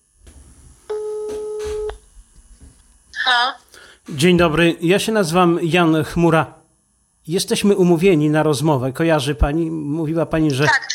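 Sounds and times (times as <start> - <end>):
low hum: 0.0 - 10.9
telephone ringing out on a call to a member of parliament's office in Rzeszów: 0.9 - 1.9
speech: 3.3 - 6.6, 7.2 - 10.9.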